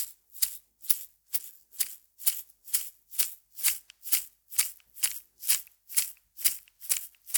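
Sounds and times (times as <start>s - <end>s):
small medicine bottle shaker with ring rattling: 2.7s - 7.3s.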